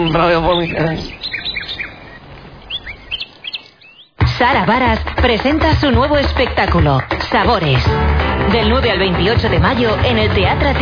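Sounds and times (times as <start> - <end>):
speech: 0.0 - 1.3, 4.4 - 10.7
small birds chirping: 0.0 - 4.2.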